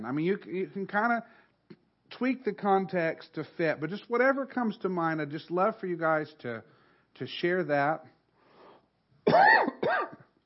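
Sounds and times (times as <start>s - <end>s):
speech: 0.0s - 8.1s, 9.2s - 10.0s
person coughing harshly: 9.3s - 10.3s.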